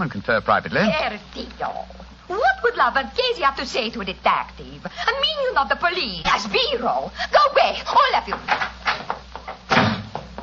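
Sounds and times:
speech: 0.0 - 9.1
door slamming shut: 9.7 - 10.2.

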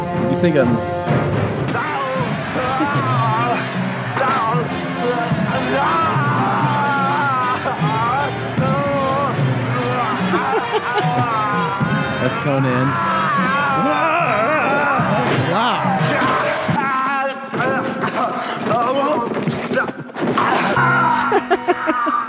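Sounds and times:
speech: 0.4 - 1.2, 12.2 - 14.1
man yelling and screaming in movie action-hero screams: 1.7 - 16.9
laughter: 1.7 - 17.0, 17.6 - 22.2.

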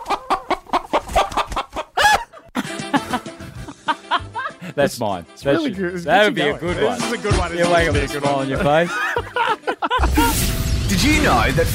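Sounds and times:
person imitating a chicken clucking: 0.0 - 2.2
laughter: 2.0 - 5.0, 8.2 - 10.4
speech: 4.8 - 9.4, 10.3 - 11.7.

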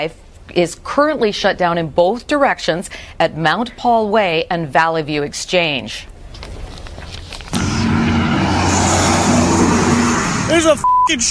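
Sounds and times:
speech: 0.0 - 6.1, 10.5 - 11.2
pickup truck engine roar speeding down a road: 7.5 - 10.8
rushing road noise: 7.5 - 10.8.

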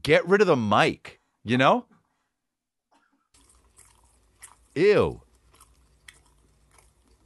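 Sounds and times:
speech: 0.0 - 1.9, 4.8 - 5.2
person chewing beef with sauce: 3.0 - 7.2.

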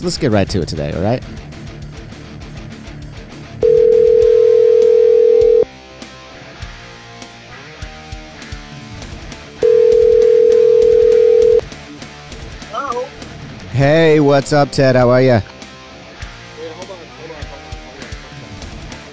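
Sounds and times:
speech: 0.0 - 1.5, 13.8 - 15.5
telephone line tone from a call being placed: 3.6 - 5.7, 9.6 - 11.6
soft music: 3.6 - 6.5, 9.6 - 18.4.

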